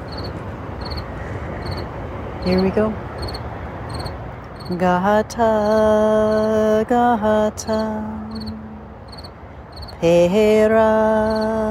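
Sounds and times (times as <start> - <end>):
cricket chirping: 0.0 - 4.8, 5.4 - 6.7, 7.6 - 10.2, 11.1 - 11.7
low city rumble: 0.0 - 11.7
speech: 2.4 - 3.1, 4.7 - 8.2, 10.0 - 11.7.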